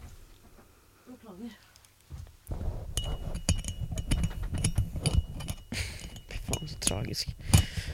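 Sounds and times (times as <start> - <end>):
speech: 1.3 - 1.7, 6.9 - 7.5
small metal screw dropped, bouncing on a hard surface: 3.0 - 7.9.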